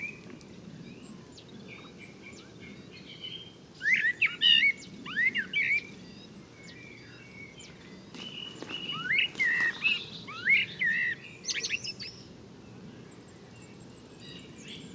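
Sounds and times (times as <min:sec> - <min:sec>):
faint bird calls: 0:00.0 - 0:12.2
common blackbird singing: 0:01.7 - 0:12.2.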